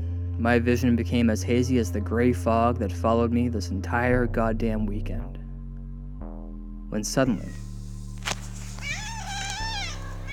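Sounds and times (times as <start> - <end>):
steady low electrical hum: 0.0 - 10.3
speech: 0.4 - 5.4, 6.9 - 7.6
cat meowing: 8.7 - 10.3.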